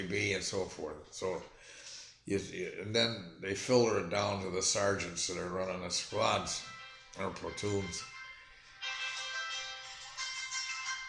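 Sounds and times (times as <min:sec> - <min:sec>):
speech: 0:00.0 - 0:08.1
phone ringtone with bright tonal electronic melody: 0:06.2 - 0:11.0.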